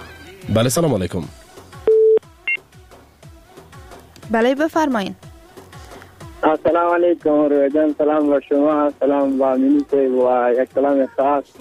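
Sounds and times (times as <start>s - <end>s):
speech: 0.4s - 1.5s, 4.3s - 5.2s, 6.4s - 11.5s
long low telephone beep as a call is placed: 1.9s - 2.6s.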